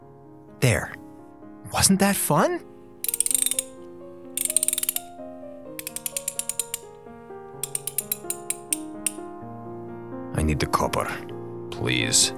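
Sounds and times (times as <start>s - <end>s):
speech: 0.6s - 1.0s, 1.7s - 2.7s, 10.5s - 12.3s
socket wrench ratcheting: 3.0s - 5.2s, 5.8s - 7.0s, 7.6s - 9.3s.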